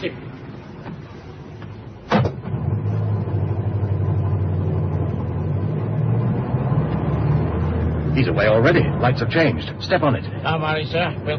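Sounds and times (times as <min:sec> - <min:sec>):
speech: 0:00.0 - 0:00.2, 0:08.2 - 0:11.3
taxi engine rumbling as the car pulls away: 0:00.0 - 0:11.3
sharp knock: 0:02.1 - 0:02.5.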